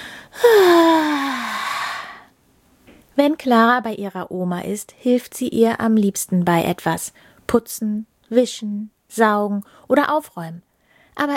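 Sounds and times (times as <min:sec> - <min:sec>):
loud drawn-out yawn: 0:00.4 - 0:02.3
speech: 0:03.2 - 0:11.3.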